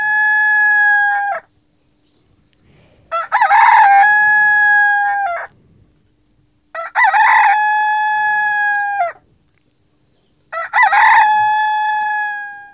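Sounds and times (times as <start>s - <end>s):
rooster crowing: 0.0s - 1.5s, 3.1s - 5.5s, 6.7s - 9.2s, 10.5s - 12.7s.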